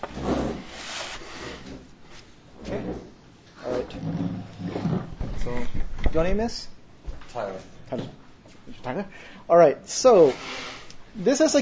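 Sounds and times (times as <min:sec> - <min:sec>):
wooden chair pulled up scraping across floor: 0:00.0 - 0:05.7
speech: 0:06.2 - 0:06.8, 0:07.4 - 0:11.6.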